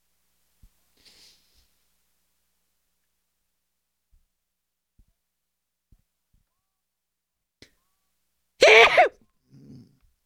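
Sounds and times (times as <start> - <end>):
person sneezing: 8.6 - 9.8.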